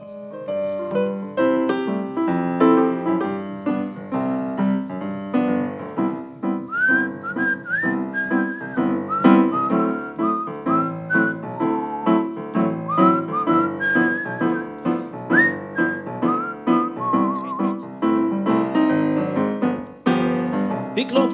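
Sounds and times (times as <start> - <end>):
full instrumental backing music: 0.0 - 21.3
person whistling a bright clear melody: 6.4 - 18.0.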